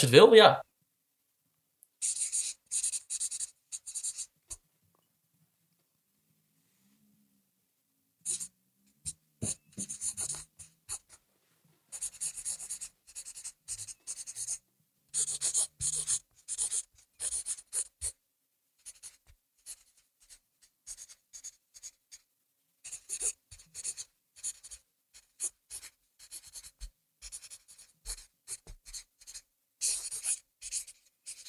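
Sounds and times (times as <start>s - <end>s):
speech: 0.0s - 0.7s, 2.0s - 2.2s
pen scratching across a small canvas: 2.0s - 4.6s, 8.2s - 11.2s, 11.9s - 18.2s, 18.8s - 31.4s.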